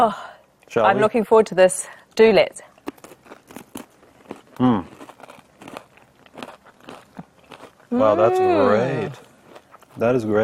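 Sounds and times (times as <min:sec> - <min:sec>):
speech: 0:00.0 - 0:02.7, 0:04.6 - 0:05.0, 0:07.9 - 0:09.2, 0:10.0 - 0:10.4
biting and crunching a cracker topped with hummus: 0:02.7 - 0:07.9, 0:09.2 - 0:10.2.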